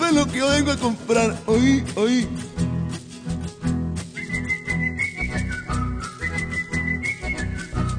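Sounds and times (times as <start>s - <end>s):
steady busy musical backing: 0.0s - 7.9s
speech: 0.1s - 2.5s
person whistling a short lilting tune: 4.1s - 7.9s.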